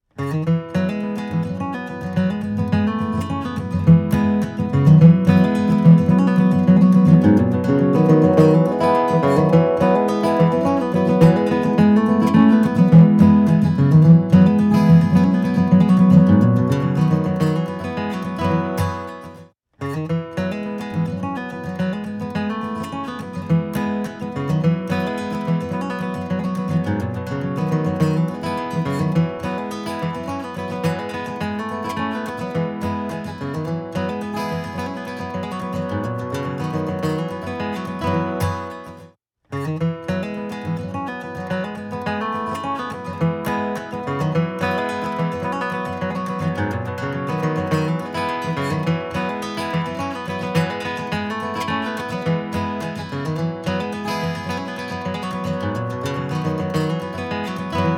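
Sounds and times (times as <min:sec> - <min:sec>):
guitar playing with EQ adjustment: 0:00.2 - 0:57.9.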